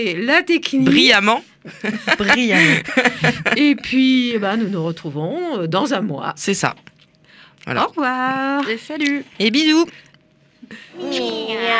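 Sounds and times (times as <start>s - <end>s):
speech: 0.0s - 6.9s, 7.6s - 10.1s, 10.7s - 11.7s
laughter: 0.9s - 3.8s, 10.9s - 11.7s
person imitating a cat meowing: 11.0s - 11.7s.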